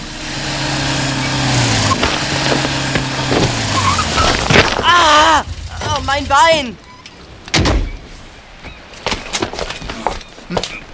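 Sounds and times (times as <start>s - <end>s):
car engine droning: 0.0s - 6.3s
speech: 6.2s - 6.8s.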